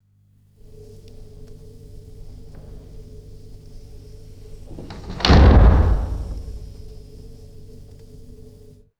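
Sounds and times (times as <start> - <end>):
heavy interior door shutting with reverb: 4.5 - 6.9.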